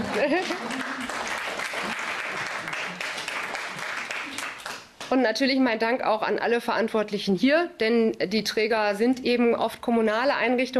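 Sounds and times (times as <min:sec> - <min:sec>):
crowd applause: 0:00.0 - 0:04.9
speech: 0:00.2 - 0:00.8, 0:05.1 - 0:10.7.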